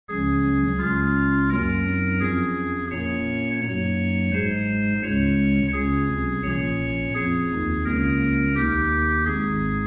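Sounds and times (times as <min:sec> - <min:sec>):
pipe organ playing with Rohr 8, Cornett, Gedackt 8, Sub 16 and Octave 8 stops: 0:00.1 - 0:09.8.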